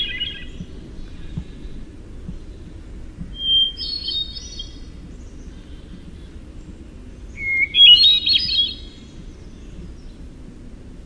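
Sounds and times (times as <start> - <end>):
Hermit thrush singing fluty whistled phrases: 0.0 - 0.6, 3.3 - 4.8, 7.3 - 9.0.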